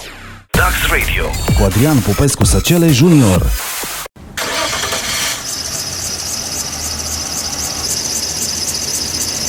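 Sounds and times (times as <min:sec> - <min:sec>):
speech: 0:00.7 - 0:03.8
car engine cranking and failing to start: 0:04.3 - 0:09.4.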